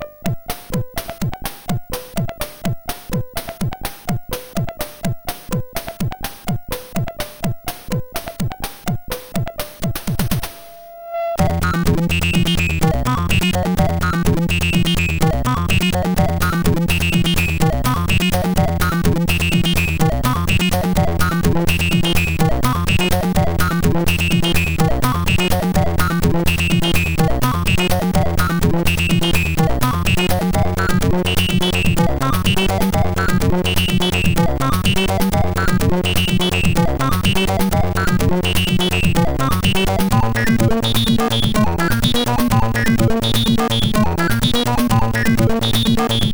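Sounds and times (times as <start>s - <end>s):
techno noise music: 0.3s - 10.7s, 11.4s - 46.3s.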